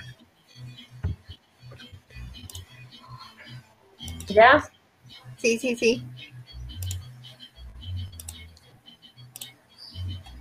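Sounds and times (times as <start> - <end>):
computer mouse clicking: 2.4 - 2.7, 4.0 - 4.4, 6.8 - 7.1, 8.2 - 8.7, 9.3 - 9.6
speech: 4.3 - 4.7, 5.4 - 6.2.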